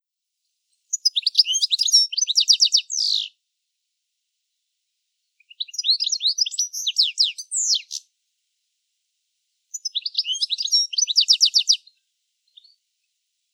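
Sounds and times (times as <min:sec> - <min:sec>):
European goldfinch twittering calls: 0:00.9 - 0:03.3, 0:05.4 - 0:08.0, 0:09.7 - 0:12.8.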